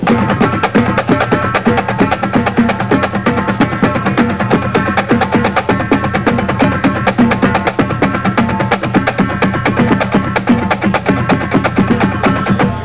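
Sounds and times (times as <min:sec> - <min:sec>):
drum accent tap exercise: 0:00.0 - 0:12.8.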